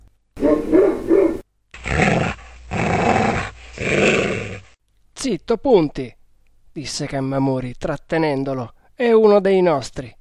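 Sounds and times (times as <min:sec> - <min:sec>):
dog barking and growling angrily: 0:00.4 - 0:04.8
speech: 0:05.3 - 0:06.2, 0:06.8 - 0:10.1.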